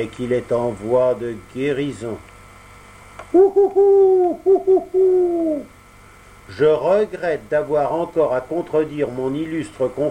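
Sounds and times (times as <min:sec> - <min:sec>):
speech: 0:00.0 - 0:02.3, 0:03.3 - 0:05.8, 0:06.5 - 0:10.1
owl hooting: 0:03.2 - 0:05.8.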